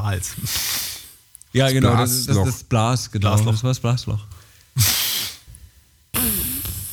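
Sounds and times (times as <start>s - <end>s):
speech: 0.0s - 0.9s, 1.5s - 5.0s
deep loud nasal sniffs: 0.3s - 1.2s, 4.8s - 5.5s, 6.2s - 6.9s.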